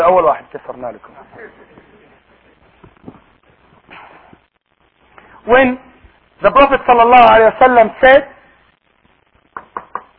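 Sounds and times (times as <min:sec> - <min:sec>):
speech: 0:00.0 - 0:01.9, 0:05.4 - 0:08.3
sharp wooden knocks: 0:09.6 - 0:10.1.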